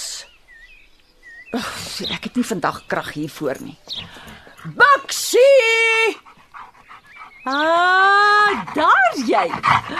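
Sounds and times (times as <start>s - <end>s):
speech: 1.5s - 6.3s, 7.5s - 9.9s
dog huffing soft rhythmic breaths: 3.9s - 4.8s, 6.1s - 7.7s, 8.3s - 9.9s.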